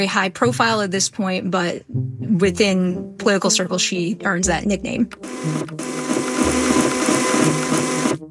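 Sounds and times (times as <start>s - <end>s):
speech: 0.0s - 7.6s
printer printing a page: 5.2s - 8.2s.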